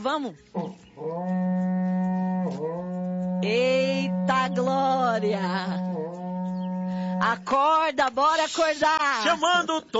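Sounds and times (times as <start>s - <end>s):
speech: 0.0s - 1.6s, 3.4s - 5.9s, 7.0s - 9.9s
berrante cattle horn blowing a long note: 0.6s - 7.5s.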